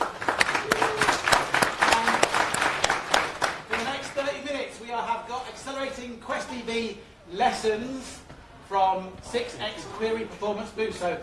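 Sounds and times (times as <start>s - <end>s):
room full of people applauding: 0.0s - 4.4s
speech: 6.0s - 11.2s.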